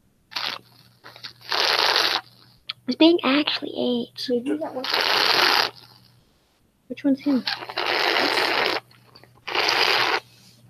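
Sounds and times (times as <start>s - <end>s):
person slurping while drinking water: 0.3s - 2.2s, 4.8s - 5.9s, 7.4s - 8.8s, 9.4s - 10.3s
speech: 2.9s - 5.3s, 6.9s - 8.5s.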